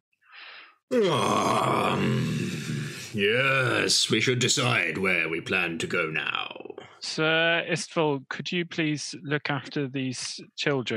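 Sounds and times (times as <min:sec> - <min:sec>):
soft breathy inhale during a stretch: 0:00.3 - 0:00.8
person yawning during a big stretch: 0:00.9 - 0:03.9
speech: 0:00.9 - 0:10.9.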